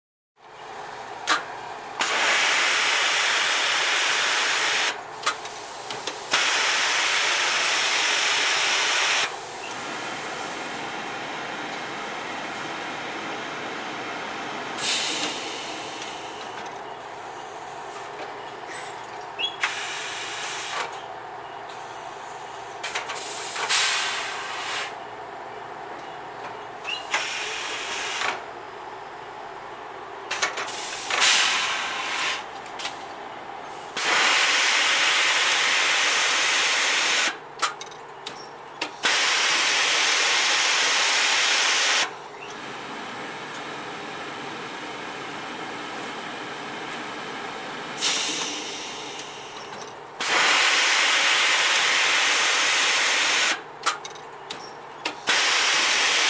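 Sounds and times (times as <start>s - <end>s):
industrial hydraulic exhaust: 2.0s - 18.1s, 19.6s - 21.0s, 22.3s - 25.0s, 26.9s - 28.5s, 30.6s - 32.6s, 33.7s - 37.4s, 38.9s - 42.4s, 46.7s - 53.7s, 55.1s - 56.2s.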